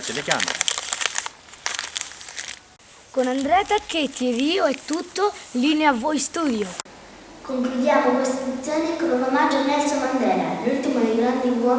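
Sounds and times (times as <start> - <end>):
wrapping paper crumpling as a Christmas gift is torn open: 0.0 - 5.8
speech: 0.1 - 0.8, 3.1 - 6.9, 7.5 - 11.7.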